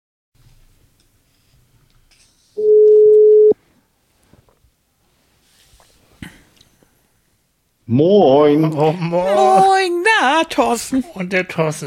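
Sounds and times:
outgoing telephone call ring tone: 2.6s - 3.6s
speech: 7.9s - 11.8s.

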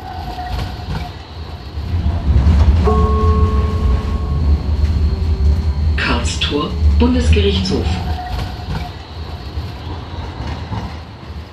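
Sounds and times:
tram or light rail vehicle rumbling on tracks: 0.0s - 11.5s
high-pitched tonal whine from tram wheels or motor: 2.1s - 9.0s
speech: 7.0s - 8.1s.

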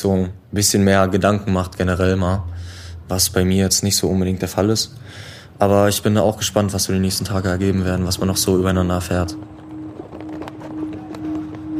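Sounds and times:
speech: 0.0s - 9.6s
low steady hum: 0.0s - 11.7s
footsteps of several people walking on cobblestone streets in a city's old town: 8.4s - 11.7s.

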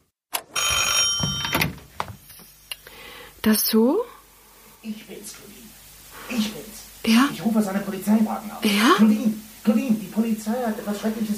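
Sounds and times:
telephone bell ringing in a radio drama: 0.5s - 1.7s
speech: 3.4s - 4.1s, 4.8s - 11.3s.

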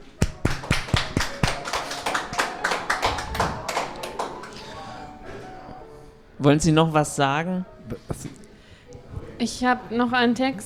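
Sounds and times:
audience applause after a reading: 0.0s - 5.3s
speech: 6.4s - 8.3s, 9.4s - 10.6s.

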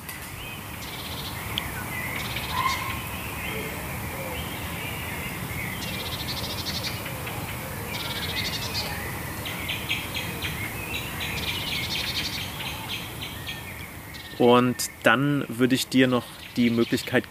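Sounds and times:
birds chirping outdoors: 0.0s - 17.2s
hiss of ambient noise: 0.0s - 17.2s
speech: 14.4s - 17.2s.

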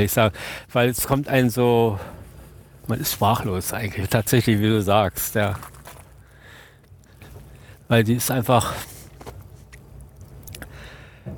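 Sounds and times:
speech: 0.0s - 2.2s, 2.9s - 5.7s, 7.9s - 8.9s
low rumble of ice breaking off large ice floes: 1.4s - 11.3s
ice breaking off large ice floes: 4.2s - 10.6s.

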